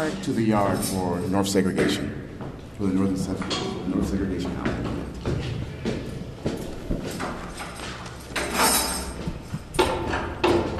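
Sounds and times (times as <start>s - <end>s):
speech: 0.0s - 4.9s
footsteps climbing stone stairs: 4.4s - 8.4s, 9.1s - 10.7s.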